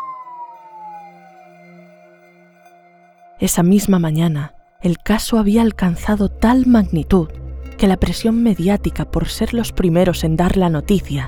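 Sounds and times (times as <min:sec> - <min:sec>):
ambulance siren wailing in the street: 0:00.0 - 0:03.1
speech: 0:03.4 - 0:11.2.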